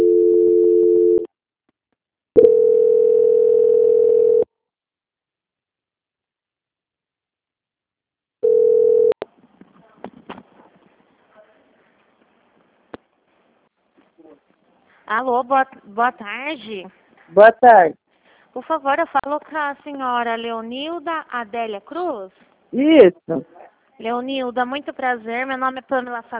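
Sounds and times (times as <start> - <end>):
steady loud telephone tone during a call transfer: 0.0 - 1.3, 2.4 - 4.5, 8.4 - 9.2
speech: 15.2 - 18.0, 18.6 - 26.3.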